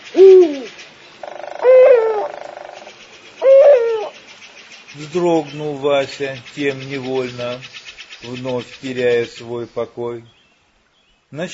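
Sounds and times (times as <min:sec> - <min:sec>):
eagle owl hooting in a thicket across a river: 0:00.0 - 0:04.2
speech: 0:05.0 - 0:10.4, 0:11.3 - 0:11.5.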